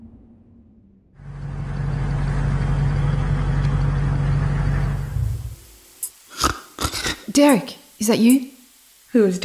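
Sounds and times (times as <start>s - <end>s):
overheating car engine running: 0.0s - 5.6s
speech: 7.4s - 9.4s.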